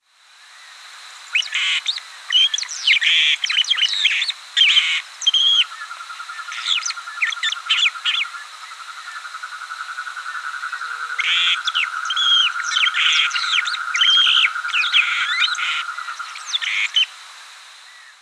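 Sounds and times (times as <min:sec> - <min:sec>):
Pseudoleistes guirahuro calling: 0:01.3 - 0:17.1.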